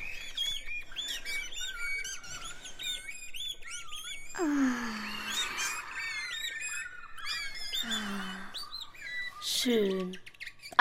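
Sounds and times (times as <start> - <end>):
many birds chirping and singing near a garbage shed: 0.0 - 10.7
speech: 9.6 - 10.3.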